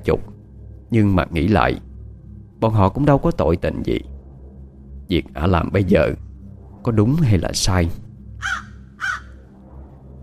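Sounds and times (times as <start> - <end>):
speech: 0.0 - 0.3, 0.9 - 1.9, 2.6 - 4.1, 5.1 - 6.2, 6.8 - 8.6
low steady hum: 0.0 - 10.2
crow cawing at night: 8.4 - 9.4.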